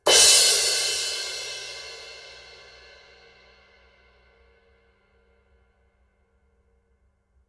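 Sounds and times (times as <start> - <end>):
18in thin crash cymbal: 0.0 - 4.7.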